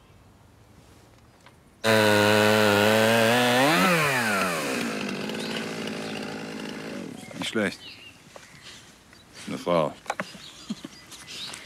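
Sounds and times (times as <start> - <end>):
chainsaw running: 1.8 - 7.4
speech: 7.5 - 8.0, 9.7 - 10.0.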